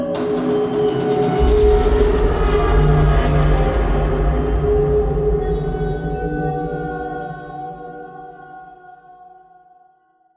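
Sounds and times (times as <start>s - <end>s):
metallic building ambience: 0.2s - 8.1s.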